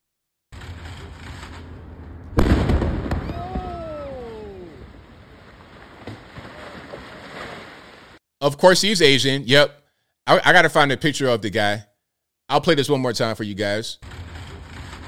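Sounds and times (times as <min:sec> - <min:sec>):
steady outdoor noise: 0:00.5 - 0:08.2
loud explosion in a played video: 0:01.9 - 0:07.1
speech: 0:08.4 - 0:11.9, 0:12.5 - 0:14.2.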